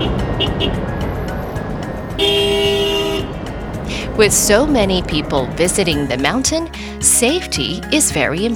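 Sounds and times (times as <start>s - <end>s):
traffic jam rumble on a narrow mountain road: 0.0s - 8.5s
loud sustained car horn blast: 2.2s - 3.4s
speech: 4.2s - 8.5s.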